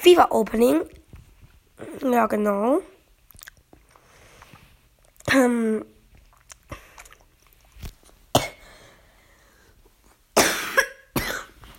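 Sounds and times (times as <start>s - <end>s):
speech: 0.0s - 1.0s, 1.8s - 2.9s, 5.2s - 5.9s
person coughing: 8.4s - 8.7s, 10.4s - 11.6s.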